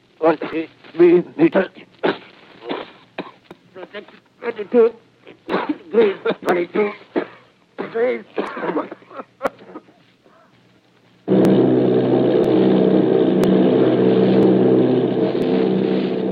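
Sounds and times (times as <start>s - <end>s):
speech: 0.2s - 1.9s, 3.8s - 7.1s, 7.9s - 9.3s
bomber plane engines droning: 11.3s - 16.3s.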